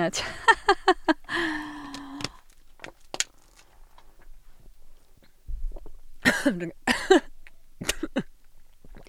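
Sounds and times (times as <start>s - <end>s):
speech: 0.0s - 0.7s, 6.5s - 6.8s
laughter: 0.2s - 1.7s
person coughing: 6.2s - 8.3s.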